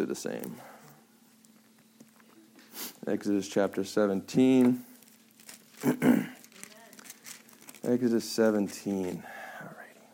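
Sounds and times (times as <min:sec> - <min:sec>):
speech: 0:00.0 - 0:00.8, 0:03.1 - 0:04.9, 0:05.8 - 0:06.4, 0:07.8 - 0:09.4
paper towels being crumpled and handled: 0:04.5 - 0:09.2
throaty vocal burst: 0:05.8 - 0:06.4.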